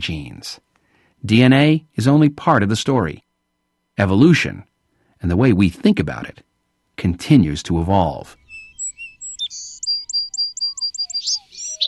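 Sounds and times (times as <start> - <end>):
speech: 0.0 - 3.2, 4.0 - 8.4
bird singing a bright rapid song: 8.0 - 11.8.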